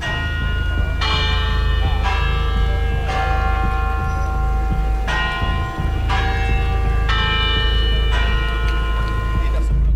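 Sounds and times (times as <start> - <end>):
constant low rumble: 0.0 - 9.9
university tower clock bell chiming the quarter hour: 0.0 - 9.9.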